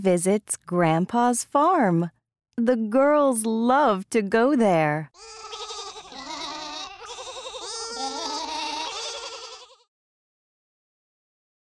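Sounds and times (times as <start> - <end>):
speech: 0.0 - 5.6
lambs bleating on a farm: 5.2 - 9.9.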